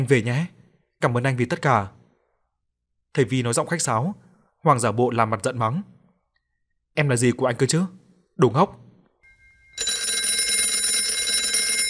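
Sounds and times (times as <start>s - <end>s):
speech: 0.0s - 2.0s, 3.1s - 6.0s, 7.0s - 8.8s
telephone ringing insistently with a buzzing electronic tone: 9.2s - 11.8s.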